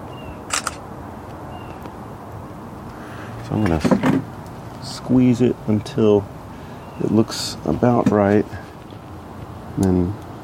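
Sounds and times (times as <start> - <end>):
faint hiss: 0.0 - 10.4
camera shutter clicks: 0.5 - 0.8
speech: 3.5 - 6.4, 7.0 - 8.6, 9.8 - 10.2.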